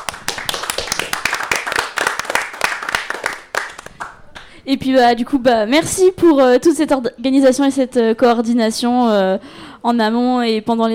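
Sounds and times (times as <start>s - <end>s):
small group clapping for themselves at a festival: 0.0s - 4.6s
speech: 4.7s - 10.9s.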